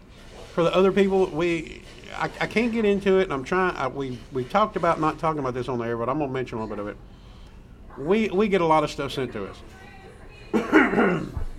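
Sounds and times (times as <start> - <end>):
speech: 0.6 - 7.1, 8.0 - 9.8
man coughing with a raspy voiced tail: 10.5 - 11.4.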